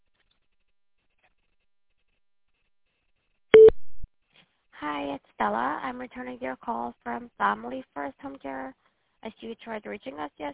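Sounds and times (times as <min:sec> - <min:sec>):
short electronic phone voicemail prompt beep: 0:03.6 - 0:03.8
speech: 0:05.0 - 0:10.5.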